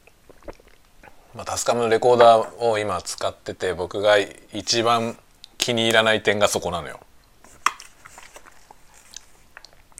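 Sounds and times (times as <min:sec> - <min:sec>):
person chewing food while eating lunch: 0:00.0 - 0:01.3, 0:08.1 - 0:09.9
speech: 0:01.4 - 0:07.1.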